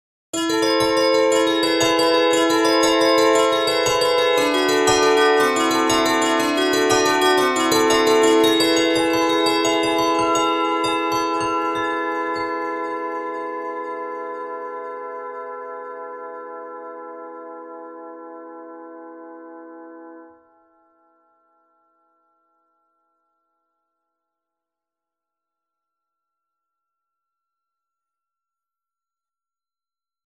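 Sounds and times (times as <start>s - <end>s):
Pianoteq piano: 0.4s - 20.4s.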